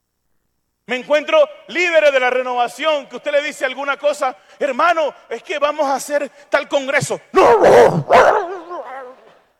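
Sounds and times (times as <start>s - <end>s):
speech: 0.9s - 8.5s
large dog barking: 7.4s - 9.2s
large dog wavering growl-like whine: 7.4s - 9.5s.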